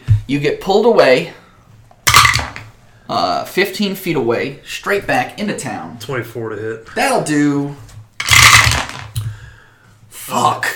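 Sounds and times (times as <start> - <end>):
speech: 0.3 - 1.4, 3.1 - 7.9
several dice clattering across a hard tabletop: 2.1 - 2.7, 8.2 - 9.2.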